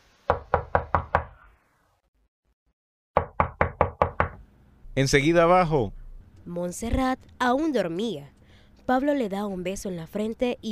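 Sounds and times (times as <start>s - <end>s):
sharp solid knocking on a door: 0.3s - 1.3s, 3.2s - 4.4s
speech: 5.0s - 10.6s.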